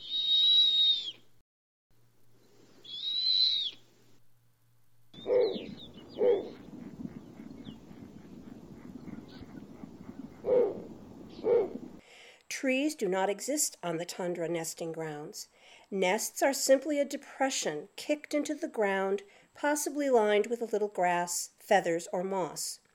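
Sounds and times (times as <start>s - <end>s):
snowy owl high-pitched slurred whistling calls: 0.0s - 1.2s, 2.8s - 3.8s, 5.2s - 11.8s
speech: 12.6s - 22.8s.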